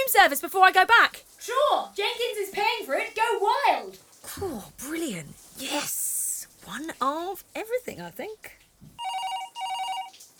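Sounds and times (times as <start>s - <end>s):
speech: 0.1s - 6.0s, 6.7s - 8.6s
telephone ringing with electronic trilling bursts: 9.0s - 10.2s.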